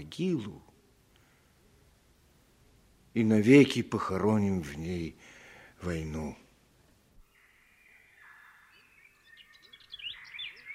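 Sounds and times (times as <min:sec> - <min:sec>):
speech: 0:00.0 - 0:00.7, 0:03.2 - 0:06.4
birds chirping and trilling: 0:07.2 - 0:10.7.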